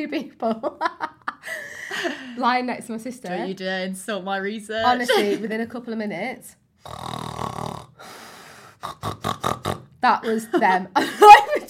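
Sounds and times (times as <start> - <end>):
speech: 0.0 - 7.4, 8.8 - 11.6
person mimicking snoring with snorting bursts: 6.8 - 9.9.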